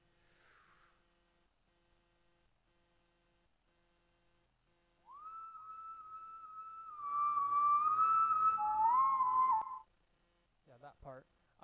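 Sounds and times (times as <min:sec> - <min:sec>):
person's recorded whistling sample in a music track: 0:05.1 - 0:09.8.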